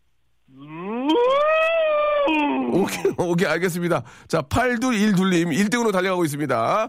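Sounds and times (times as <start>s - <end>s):
person imitating Korean Hanwoo cattle mooing: 0.5s - 2.9s
speech: 2.8s - 6.8s.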